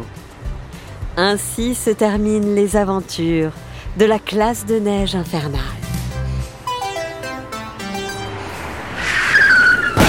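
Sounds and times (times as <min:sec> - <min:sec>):
speech: 0:01.2 - 0:05.8
short descending musical jingle: 0:06.6 - 0:10.0.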